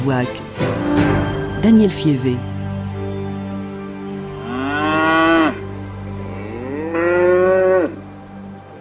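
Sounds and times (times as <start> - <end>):
speech: 0.0 - 2.5
cow mooing: 4.3 - 8.0.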